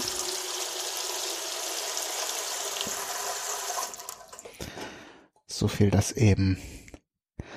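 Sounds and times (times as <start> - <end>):
water poured into metal pressure cooker: 0.0 - 4.5
speech: 5.6 - 6.8.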